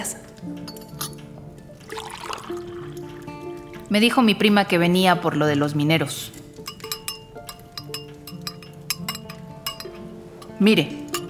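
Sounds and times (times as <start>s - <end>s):
speech: 0.0s - 0.8s, 3.9s - 6.4s, 10.6s - 11.0s
cups clinking together: 0.0s - 2.7s, 6.4s - 11.2s
coffee pouring: 1.8s - 3.9s, 6.6s - 11.2s.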